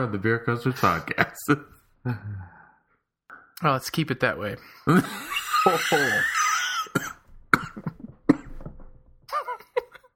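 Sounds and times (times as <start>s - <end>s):
speech: 0.0s - 2.6s, 3.6s - 7.2s
brief voiced throaty sounds: 4.9s - 7.1s
person coughing from shellfish stuck in the throat: 4.9s - 8.7s.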